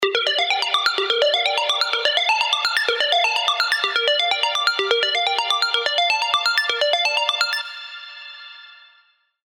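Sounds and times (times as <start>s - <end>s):
Serum synth arpeggios: 0.0s - 8.7s.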